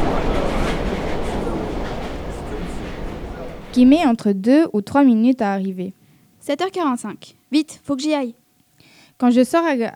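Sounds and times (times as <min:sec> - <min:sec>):
metro train in Busan rumbling along rails: 0:00.0 - 0:04.2
speech: 0:03.7 - 0:08.4, 0:09.2 - 0:09.9.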